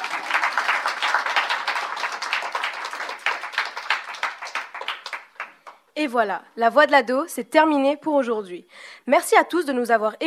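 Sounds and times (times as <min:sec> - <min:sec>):
sustained applause from a sizable crowd: 0:00.0 - 0:05.8
speech: 0:06.0 - 0:10.2.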